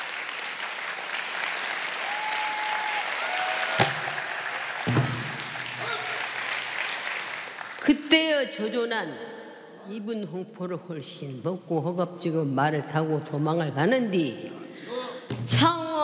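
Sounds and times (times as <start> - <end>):
audience applause welcoming performer: 0.0 - 7.9
speech: 7.9 - 15.8.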